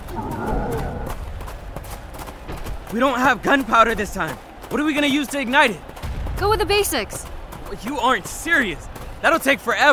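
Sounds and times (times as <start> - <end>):
horse whinnying: 0.0 - 1.1
speech: 2.9 - 9.9.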